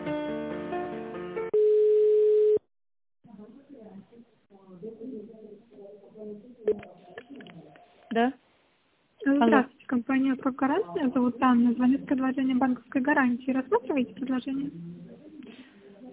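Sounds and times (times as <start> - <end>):
telephone line tone while a call is being transferred: 1.6 - 2.6
sounds: 3.3 - 8.3, 9.2 - 16.1
speech: 8.2 - 8.4, 9.4 - 9.7, 10.3 - 15.1.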